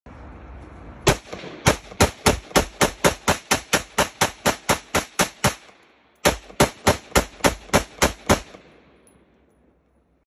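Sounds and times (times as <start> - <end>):
Norinco CQ rifle gunshots: 1.1 - 8.9.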